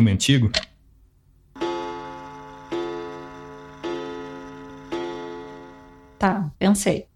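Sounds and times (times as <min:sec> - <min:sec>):
speech: 0:00.0 - 0:00.7, 0:06.2 - 0:07.1
pendulum wall clock ticking with metallic resonance: 0:01.6 - 0:06.2.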